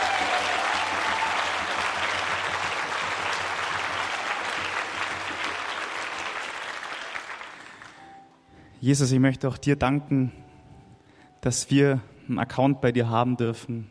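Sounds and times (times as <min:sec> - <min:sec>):
audience applause after an auxiliary bishop's talk: 0:00.0 - 0:08.0
speech: 0:08.8 - 0:10.4, 0:11.4 - 0:13.8.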